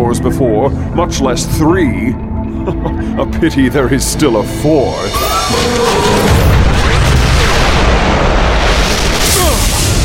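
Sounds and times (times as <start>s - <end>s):
speech: 0.1s - 6.5s
powerful energy beam blast: 5.1s - 10.0s.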